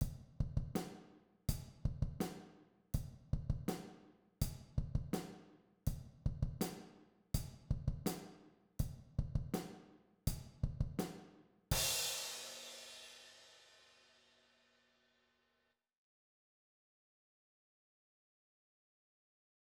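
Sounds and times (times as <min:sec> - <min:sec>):
rock beat on drum set: 0:00.0 - 0:05.4, 0:06.3 - 0:13.2.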